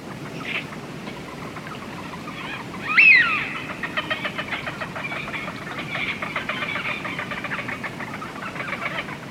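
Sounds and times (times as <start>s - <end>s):
flock of wigeon ducks murmuring chatter: 0.2s - 9.3s
wigeon duck sharp whistled wheeoo: 2.9s - 3.8s.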